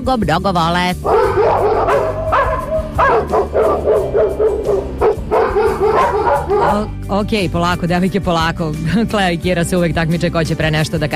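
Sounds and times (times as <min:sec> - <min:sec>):
speech: 0:00.0 - 0:02.3, 0:06.5 - 0:11.1
two dogs barking and yipping: 0:01.0 - 0:07.0.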